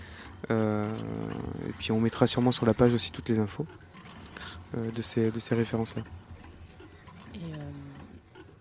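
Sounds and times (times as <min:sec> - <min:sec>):
steady clock or metronome ticking: 0:00.0 - 0:08.5
speech: 0:00.4 - 0:01.2, 0:01.8 - 0:03.8, 0:04.7 - 0:06.2.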